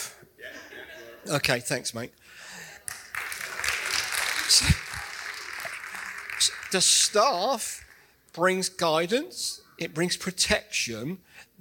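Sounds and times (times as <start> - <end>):
steady noise: 0.0 - 11.5
speech: 1.2 - 2.6, 4.5 - 4.8, 6.4 - 7.8, 8.4 - 11.5
one person clapping: 2.8 - 8.1.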